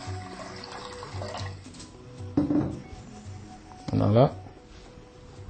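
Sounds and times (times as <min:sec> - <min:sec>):
water pouring into a pot before being boiled: 0:00.0 - 0:01.8
speech: 0:04.0 - 0:04.4.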